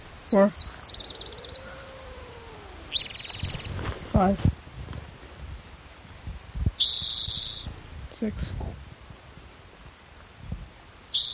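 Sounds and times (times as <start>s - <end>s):
warbler singing: 0.0s - 3.8s, 6.8s - 7.7s, 11.1s - 11.3s
speech: 0.3s - 0.7s, 4.2s - 4.6s, 8.2s - 8.8s.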